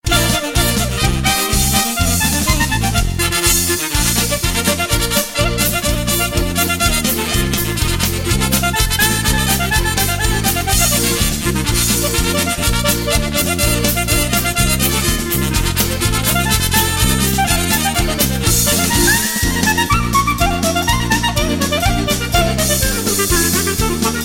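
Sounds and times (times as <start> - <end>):
clarinet polka: 0.0 - 24.2.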